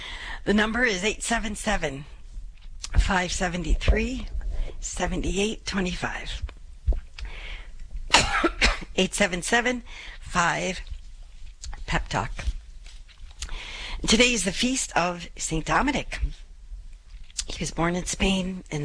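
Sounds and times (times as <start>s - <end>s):
speech: 0.4s - 2.2s, 3.0s - 6.5s, 9.0s - 10.9s, 11.9s - 12.5s, 14.0s - 16.4s, 17.5s - 18.8s
person coughing after choking on saliva: 8.1s - 9.0s.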